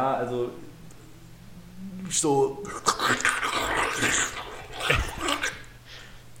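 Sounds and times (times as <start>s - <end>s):
speech: 0.0s - 0.7s, 2.1s - 4.2s
person imitating a vacuum cleaner with a rasping growl: 1.1s - 5.7s.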